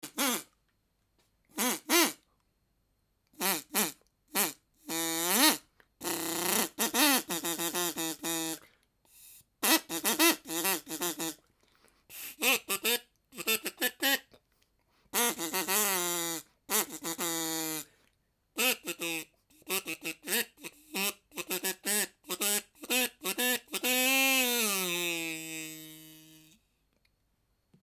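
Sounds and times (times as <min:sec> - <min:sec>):
wooden duck call imitating a duck quacking: 0:00.0 - 0:00.5, 0:01.6 - 0:02.2, 0:03.4 - 0:08.6, 0:09.6 - 0:11.4, 0:12.1 - 0:14.3, 0:15.2 - 0:17.9, 0:18.6 - 0:26.6.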